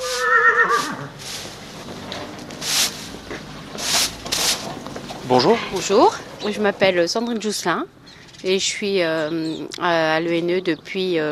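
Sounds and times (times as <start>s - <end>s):
horse whinnying in a stable: 0.0s - 1.2s
horse snorting in a stable: 0.0s - 1.5s
rustling shuffles in a stable: 0.0s - 6.0s
speech: 5.3s - 11.3s.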